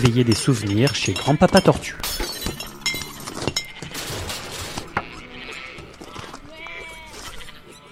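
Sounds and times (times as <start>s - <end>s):
sheep bleating in wavering cries: 0.0s - 2.0s, 2.6s - 7.8s
speech: 0.0s - 2.6s
noisy squabble of animal grunts and squeals: 0.0s - 7.8s.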